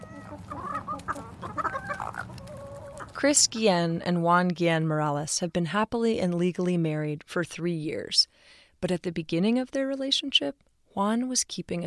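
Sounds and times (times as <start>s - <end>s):
several chickens clucking and chattering: 0.0s - 3.8s
speech: 3.2s - 11.8s.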